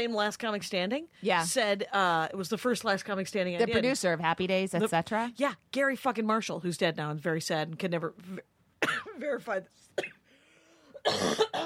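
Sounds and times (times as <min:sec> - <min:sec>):
speech: 0:00.0 - 0:10.2, 0:11.0 - 0:11.6
harsh loud coughing: 0:08.8 - 0:09.3, 0:10.0 - 0:10.3, 0:10.9 - 0:11.6.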